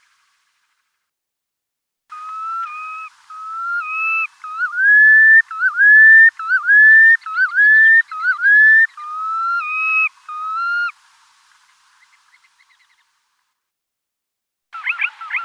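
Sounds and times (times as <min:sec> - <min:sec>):
red knot whistled calls: 0:02.1 - 0:13.3, 0:14.8 - 0:15.4.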